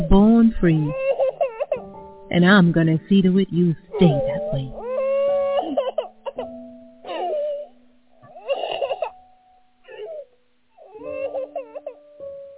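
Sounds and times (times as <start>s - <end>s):
speech: 0.0s - 1.1s, 2.3s - 4.7s
faint steady hum: 0.0s - 12.5s
infant crying: 0.8s - 1.9s, 3.9s - 9.2s, 9.8s - 12.0s.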